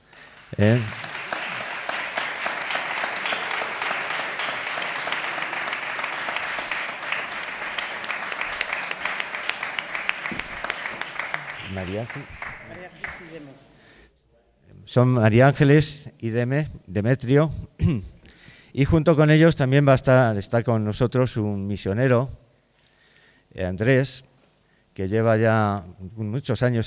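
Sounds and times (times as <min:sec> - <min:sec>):
audience applauding at a charity concert in a village church: 0:00.0 - 0:13.5
speech: 0:00.5 - 0:01.0, 0:12.0 - 0:12.4, 0:14.9 - 0:18.1, 0:18.8 - 0:22.4, 0:23.6 - 0:24.3, 0:25.0 - 0:26.8.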